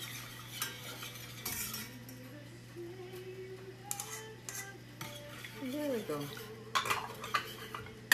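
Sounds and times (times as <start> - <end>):
utensil clinking and scraping against a pan in a home kitchen: 0.0 - 2.2, 3.8 - 8.1
speech: 6.1 - 6.6.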